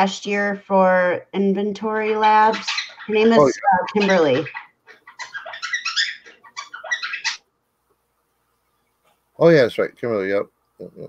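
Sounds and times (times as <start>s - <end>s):
speech: 0.0s - 4.6s, 9.4s - 11.0s
birds chirping and chattering excitedly: 0.0s - 7.5s.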